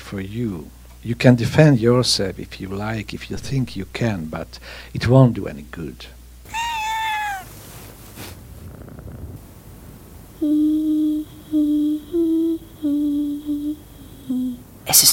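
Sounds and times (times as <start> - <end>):
speech: 0.1 - 6.6
cat meowing: 6.5 - 7.7
cat purring: 6.5 - 14.8.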